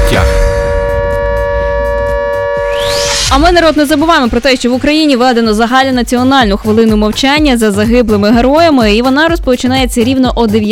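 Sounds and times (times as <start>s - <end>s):
air raid siren in Ukraine: 0.0s - 5.9s
speech: 3.3s - 10.7s.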